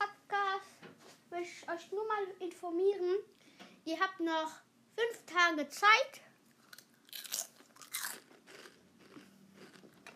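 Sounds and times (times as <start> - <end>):
speech: 1.4 - 6.2
chewing and mouth sounds: 6.6 - 10.1
crunchy bones being chewed: 6.7 - 10.1.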